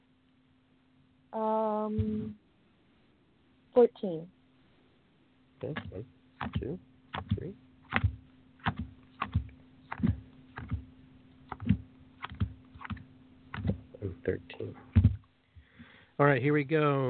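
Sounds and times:
low constant hum: 0.0 - 17.0
speech: 3.8 - 4.4, 5.6 - 8.1, 14.3 - 14.8, 16.2 - 17.0
playing cards being laid out one at a time: 5.7 - 14.0.

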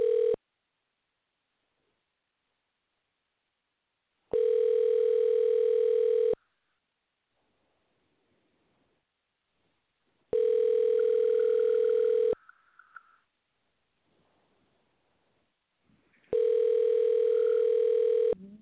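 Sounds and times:
telephone dial tone: 0.0 - 0.4, 4.3 - 6.4, 10.3 - 12.4, 16.3 - 18.4.

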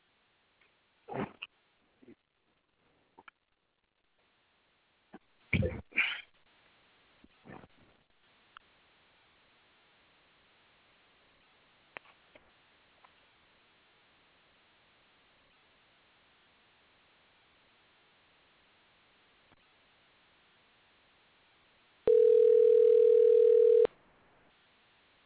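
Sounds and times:
faint hissing telephone line: 8.1 - 25.2
telephone dial tone while a call is placed: 22.1 - 23.9.

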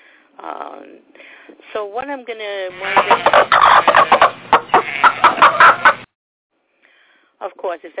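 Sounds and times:
speech: 0.4 - 5.0, 7.7 - 7.9
rubber chicken toy squawking: 2.8 - 6.0.

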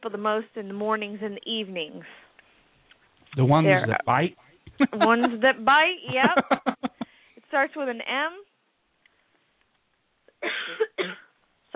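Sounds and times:
speech: 0.0 - 2.3, 3.3 - 6.9, 7.5 - 8.5
laughter: 3.8 - 7.1
short sharp cough with a throaty catch: 10.4 - 11.3.

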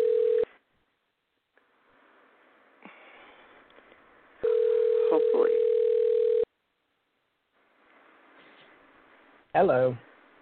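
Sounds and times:
telephone being dialed: 0.0 - 0.5, 4.4 - 6.5
speech: 9.6 - 10.1.

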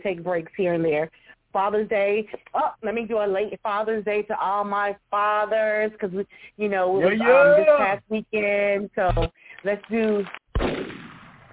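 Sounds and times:
speech: 0.0 - 10.9
gunshot sound effect with decay: 10.5 - 11.5.

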